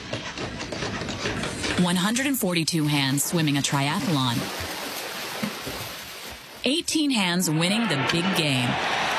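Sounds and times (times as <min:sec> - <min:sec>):
construction tools clattering and banging while building a house: 0:00.0 - 0:02.4
speech: 0:01.8 - 0:04.7, 0:06.6 - 0:09.0.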